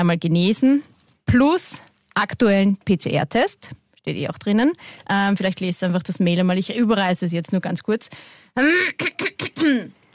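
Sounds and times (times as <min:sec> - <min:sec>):
speech: 0:00.0 - 0:10.0
person clearing throat: 0:08.8 - 0:09.9.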